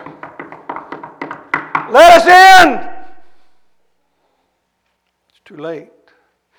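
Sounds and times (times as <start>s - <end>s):
sharp knocks on a door: 0.0s - 2.0s
speech: 1.9s - 2.9s, 5.5s - 6.0s.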